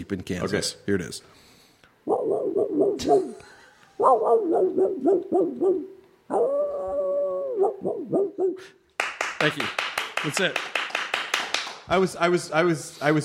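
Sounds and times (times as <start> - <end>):
speech: 0.0 - 1.5, 3.0 - 7.0, 7.6 - 8.8, 9.4 - 10.8, 11.9 - 13.2
hound baying in Kansas: 2.0 - 8.8.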